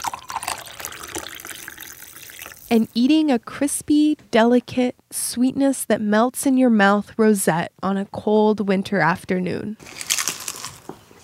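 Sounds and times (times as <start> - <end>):
coffee pouring into a cup: 0.0 - 2.8
speech: 2.7 - 10.1.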